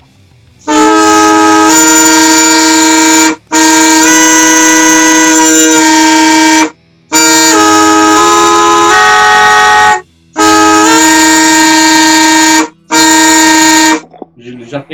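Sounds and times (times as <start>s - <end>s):
droning instrument in A Dorian playing dissonant held chords: 0.0s - 14.5s.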